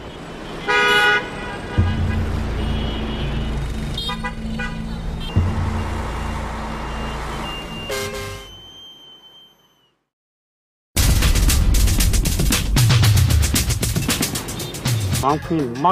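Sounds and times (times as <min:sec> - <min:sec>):
engine rumble of heavy street traffic in Hanoi Vietnam: 0:00.0 - 0:09.4, 0:12.0 - 0:15.9
car horns honking in Hanoi Vietnam: 0:00.0 - 0:09.8, 0:13.9 - 0:15.3.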